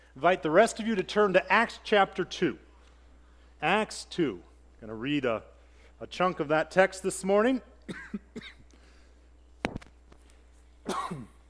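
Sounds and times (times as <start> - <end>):
speech: 0.2 - 2.7, 3.6 - 8.6
person coughing into microphone: 7.9 - 8.7, 10.8 - 11.4.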